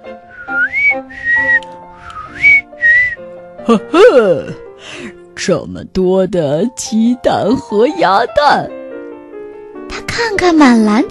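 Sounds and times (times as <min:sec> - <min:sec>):
person whistling a short clear tune: 0:00.3 - 0:03.2
speech: 0:03.7 - 0:08.8, 0:10.2 - 0:11.1.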